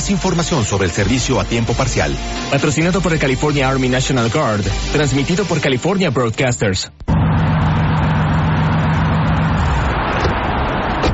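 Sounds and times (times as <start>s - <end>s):
speech: 0.1s - 7.1s
newly bought car engine running: 7.0s - 11.1s.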